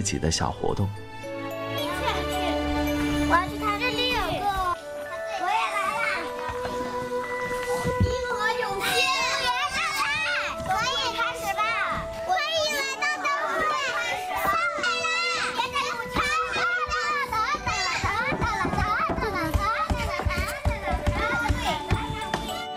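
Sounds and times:
speech: 0.0s - 1.9s
children playing and laughing together in a yard: 1.2s - 22.7s.

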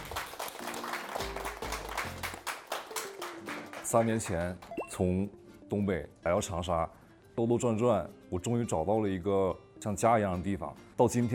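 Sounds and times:
crowd clapping: 0.0s - 4.8s
music playing: 0.0s - 11.3s
speech: 3.9s - 11.3s.

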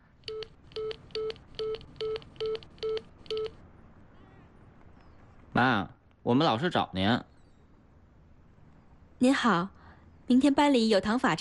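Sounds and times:
telephone keypad tones as a number is dialed: 0.2s - 3.6s
speech: 5.6s - 7.3s, 9.2s - 11.3s.

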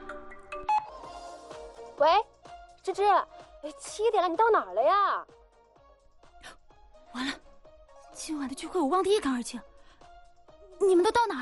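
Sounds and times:
phone ringtone chiming in short melodic bursts: 0.3s - 1.1s
speech: 2.0s - 2.3s, 2.9s - 5.4s, 8.2s - 9.7s, 10.8s - 11.4s.

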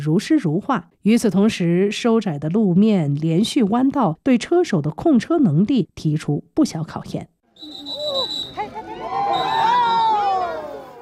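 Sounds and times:
speech: 0.0s - 7.8s
crowd of spectators cheering riders at race finish line in Tibet: 7.6s - 11.0s
higher excited yells: 7.8s - 11.0s.

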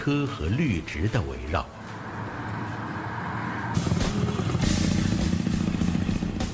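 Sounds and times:
speech: 0.0s - 1.9s
motorcycle engine rumbling along a coastal road: 1.7s - 6.5s.

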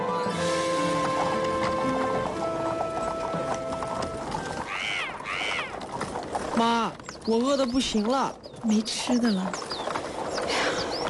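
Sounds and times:
horse hooves clip-clopping as a horse-drawn cart travels a mountain road: 0.0s - 11.0s
horse whinnying: 0.3s - 6.0s
speech: 6.6s - 9.7s.

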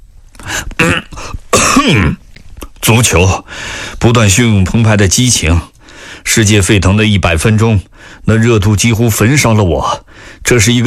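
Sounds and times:
sheepish throat clearing: 0.7s - 2.3s
speech: 1.8s - 2.2s, 2.9s - 10.8s.

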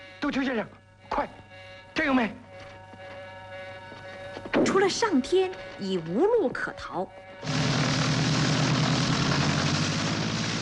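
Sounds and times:
speech: 0.2s - 2.4s, 4.6s - 7.6s
small propeller plane engine droning at takeoff: 7.4s - 10.5s.

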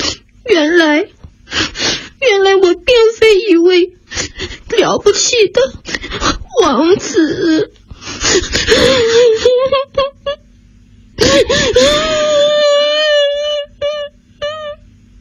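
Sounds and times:
speech: 0.5s - 1.2s, 2.6s - 10.4s, 11.2s - 12.4s
person crying after falling onto the grass: 5.9s - 10.4s, 11.2s - 14.9s.

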